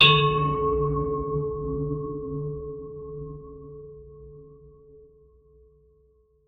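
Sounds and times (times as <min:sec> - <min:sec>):
deep bell strike: 0:00.0 - 0:03.6.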